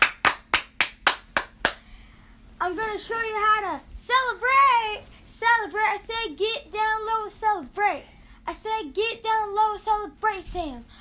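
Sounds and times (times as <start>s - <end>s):
crisp hand claps: 0.0s - 1.9s
speech: 2.6s - 10.9s.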